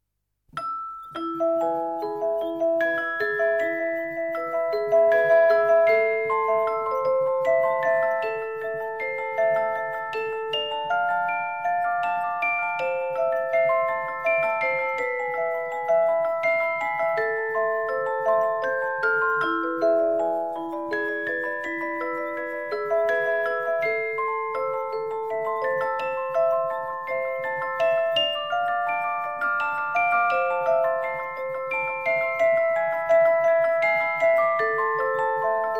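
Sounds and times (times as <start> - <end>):
carillon bells: 0.6 - 35.7.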